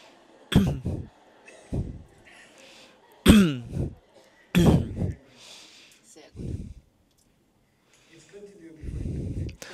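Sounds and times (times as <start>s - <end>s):
laughter: 0.0s - 5.4s
person coughing before meditating: 0.5s - 1.0s, 3.2s - 3.9s, 4.6s - 5.1s.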